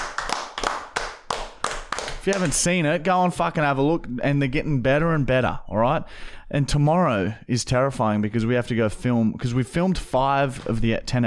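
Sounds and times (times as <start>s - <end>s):
hosts clapping a round of applause: 0.0s - 2.7s
speech: 2.3s - 11.2s.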